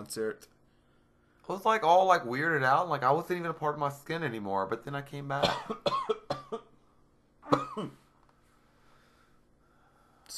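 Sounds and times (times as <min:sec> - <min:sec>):
speech: 0:00.0 - 0:00.6, 0:01.5 - 0:06.4, 0:07.5 - 0:08.0
harsh raspy coughs: 0:05.4 - 0:06.7, 0:07.4 - 0:08.0.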